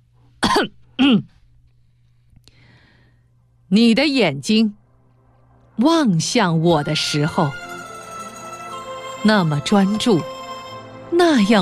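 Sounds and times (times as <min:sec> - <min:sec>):
faint low hum: 0:00.0 - 0:07.6
man forcefully clearing his throat: 0:00.4 - 0:01.4
speech: 0:00.6 - 0:01.3, 0:03.7 - 0:04.8, 0:05.8 - 0:07.6, 0:09.2 - 0:10.3, 0:11.1 - 0:11.6.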